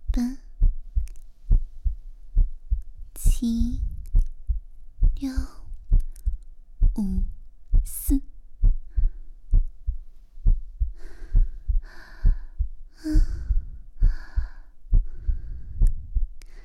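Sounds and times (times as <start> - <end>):
fast heartbeat: 0.0 - 16.6
speech: 3.4 - 3.8
soft breathy sighs and exhales: 10.9 - 16.6.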